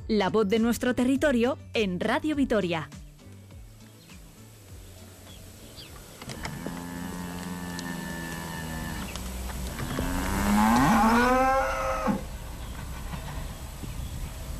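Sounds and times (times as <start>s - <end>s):
speech: 0.1s - 3.0s
outdoor hum: 4.8s - 14.5s
cattle mooing: 6.2s - 12.3s.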